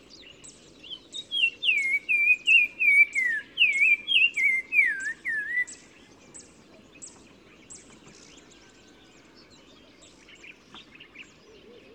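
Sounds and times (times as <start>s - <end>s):
Black-crowned tchagra Tchagra senegalus song at Oued Massa in Morocco: 0.0s - 8.4s.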